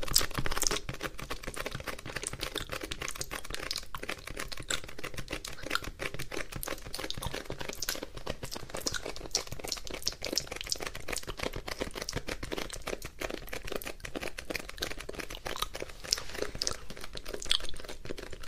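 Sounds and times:
wet mouth sounds with kisses and earbud nibbling: 0.0s - 18.4s.

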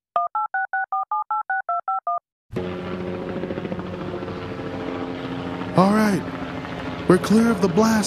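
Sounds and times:
telephone keypad beeps: 0.2s - 2.2s
helicopter engine and thumping rotor: 2.5s - 8.0s
speech: 5.8s - 6.4s, 7.1s - 8.0s.

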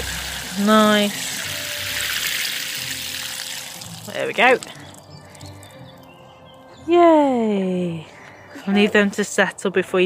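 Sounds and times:
water pouring over freshly sown French bean seeds: 0.0s - 6.1s
speech: 0.6s - 1.3s, 4.2s - 4.8s, 6.9s - 10.0s.

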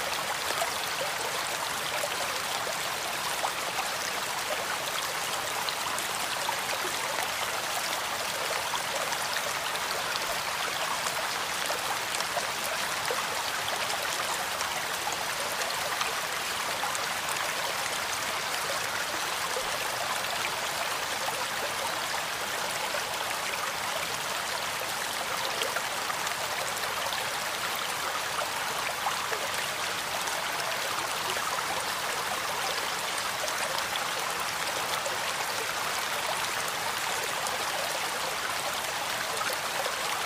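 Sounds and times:
steady dense rain: 0.0s - 40.2s.

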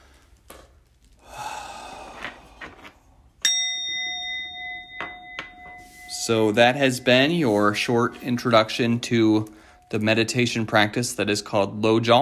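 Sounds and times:
big heavy deep breath at the close of a meditation: 1.2s - 3.3s, 9.5s - 9.9s
bright bell ding: 3.4s - 11.1s
speech: 6.3s - 12.2s.

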